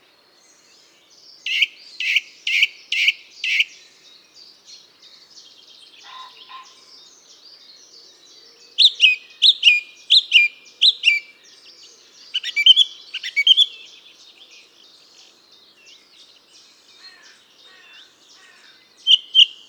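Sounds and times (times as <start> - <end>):
bird singing: 0.4 - 19.6.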